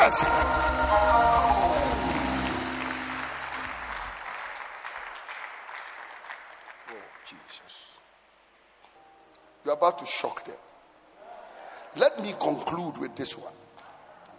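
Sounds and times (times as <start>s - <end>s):
low musical backing: 0.0s - 4.2s, 8.9s - 10.7s, 12.1s - 14.3s
congregation clapping hands: 0.0s - 7.8s
speech: 0.1s - 1.0s, 9.8s - 10.7s, 11.9s - 13.6s.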